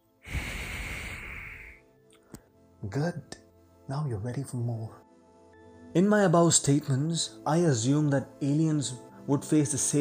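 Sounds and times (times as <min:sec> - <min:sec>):
deep breath during a guided breathing exercise: 0:00.1 - 0:02.5
speech: 0:02.8 - 0:05.0, 0:06.0 - 0:09.9.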